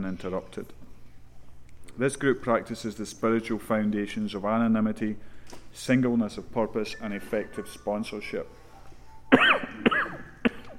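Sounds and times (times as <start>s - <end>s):
speech: 0.0s - 0.8s, 2.0s - 8.6s
person coughing during a recovery group meeting: 9.3s - 10.7s.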